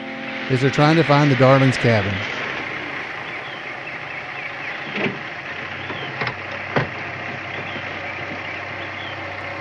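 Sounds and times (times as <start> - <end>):
gravelly road noise from a dirt road: 0.0 - 9.5
police squad car engine rumbling on a dirt road: 0.0 - 9.5
speech: 0.5 - 2.3
car bumps and rattles over uneven ground: 1.8 - 9.4.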